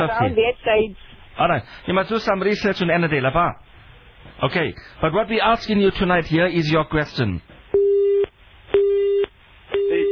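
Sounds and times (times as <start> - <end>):
speech: 0.0 - 3.7, 4.3 - 7.6
telephone busy tone after call disconnected: 7.8 - 10.1.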